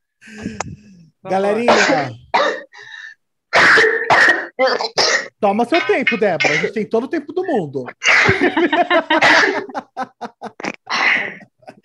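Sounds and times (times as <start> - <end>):
speech: 0.2 - 2.2, 4.9 - 11.3
person sneezing: 1.7 - 2.7, 3.5 - 5.3, 6.4 - 6.8, 8.0 - 8.4, 9.2 - 9.7, 10.6 - 11.4
person giggling: 8.1 - 11.8.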